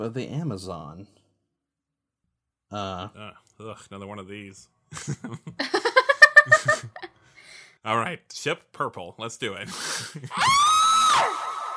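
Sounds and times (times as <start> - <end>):
speech: 0.0 - 1.2, 2.7 - 7.0, 7.8 - 11.3
laughter: 4.9 - 7.1
loud high-pitched scream echoing in a cave: 10.4 - 11.7.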